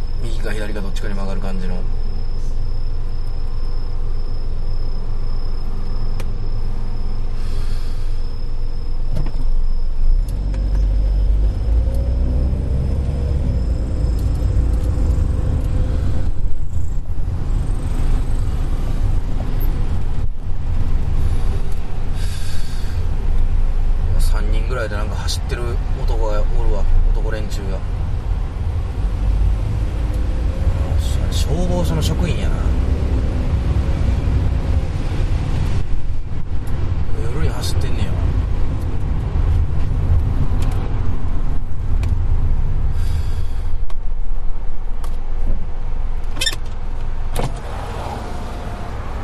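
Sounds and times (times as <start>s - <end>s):
heavy road traffic: 0.0s - 49.2s
speech: 0.4s - 2.5s.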